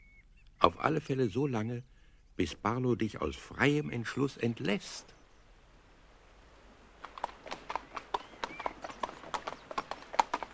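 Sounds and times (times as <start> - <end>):
speech: 0.6 - 5.2
horse hooves clip-clopping at a walking pace along a river: 6.9 - 10.5.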